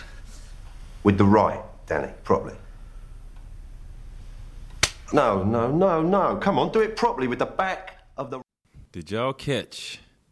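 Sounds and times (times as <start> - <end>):
speech: 1.0 - 2.7, 5.1 - 10.3
slap across the face: 4.8 - 5.1.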